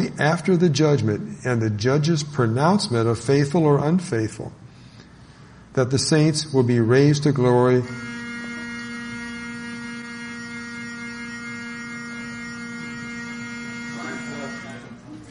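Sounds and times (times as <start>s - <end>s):
speech: 0.2s - 4.6s, 5.8s - 8.2s
fire alarm electronic buzzing tone: 7.8s - 15.1s.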